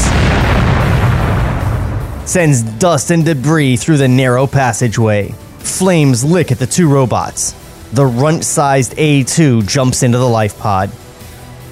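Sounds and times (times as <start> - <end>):
loud explosion with deep booming rumble: 0.0 - 3.4
speech: 2.3 - 11.0.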